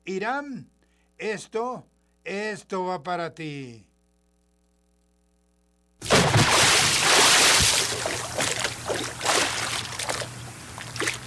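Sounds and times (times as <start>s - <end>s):
speech: 0.1s - 3.9s
bucket of water being splashed: 6.0s - 11.2s.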